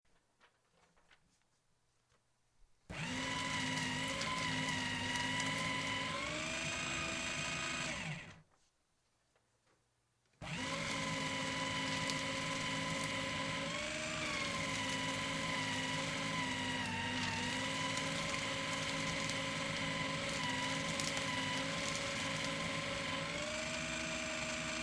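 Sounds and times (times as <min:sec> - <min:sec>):
paper shredder: 0:02.9 - 0:08.5, 0:10.4 - 0:24.8.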